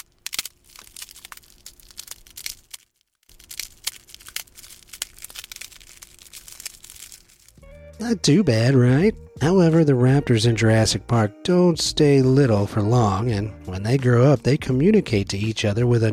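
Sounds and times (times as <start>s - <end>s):
ice cream cone being slowly crushed as hatching foley: 0.0s - 7.6s
speech: 8.0s - 16.1s.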